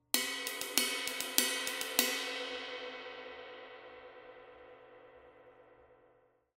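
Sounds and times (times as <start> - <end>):
K Custom Special Dry Ride cymbal playing a ride pattern: 0.2 - 4.6.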